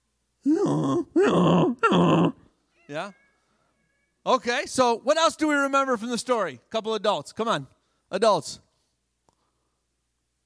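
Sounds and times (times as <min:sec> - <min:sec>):
speech: 0:00.4 - 0:01.7, 0:04.2 - 0:08.6
person imitating a donkey's hee-haw bray: 0:00.4 - 0:03.1.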